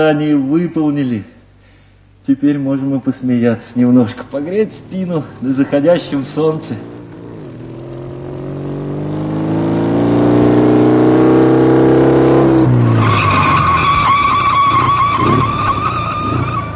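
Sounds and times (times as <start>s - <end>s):
speech: 0.0s - 1.4s, 2.3s - 7.0s
motorcycle engine droning: 2.9s - 16.7s
motorcycle tyres screeching skid under braking: 12.4s - 16.7s.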